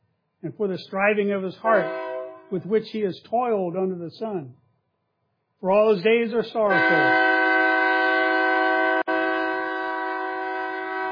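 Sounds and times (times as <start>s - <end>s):
speech: 0.4s - 4.6s, 5.6s - 7.3s
passing train horn blast: 1.7s - 2.5s, 6.7s - 11.0s.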